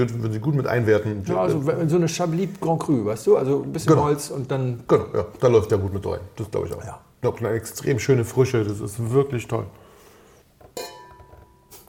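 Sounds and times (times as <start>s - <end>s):
speech: 0.0s - 9.8s
wine tasting glasses clinking together: 10.8s - 11.8s.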